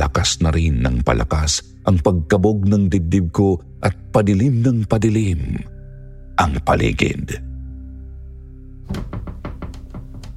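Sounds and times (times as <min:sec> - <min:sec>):
speech: 0:00.3 - 0:05.7, 0:06.4 - 0:07.5, 0:08.9 - 0:09.3
old wardrobe door pushed from inside and rattled against its lock: 0:08.9 - 0:10.3.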